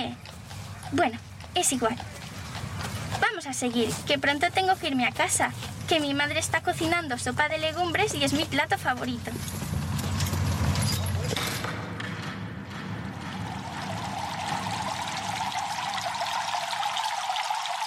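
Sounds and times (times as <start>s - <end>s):
speech: 0.9s - 2.2s, 3.3s - 9.8s
clatter: 9.4s - 14.8s
water pouring and splashing in a Roman bathhouse: 13.2s - 17.8s.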